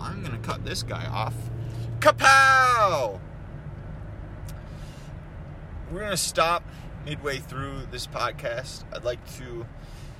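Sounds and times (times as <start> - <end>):
car engine idling in traffic: 0.0 - 10.1
traffic: 0.0 - 10.1
speech: 0.5 - 3.3, 5.9 - 10.0.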